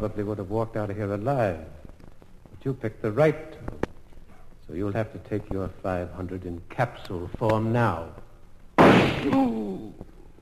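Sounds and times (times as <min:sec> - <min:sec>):
speech: 0:00.0 - 0:01.8, 0:02.6 - 0:03.8, 0:04.7 - 0:08.2, 0:08.9 - 0:10.0
gunshots: 0:08.8 - 0:09.4
person crying out: 0:09.2 - 0:10.0.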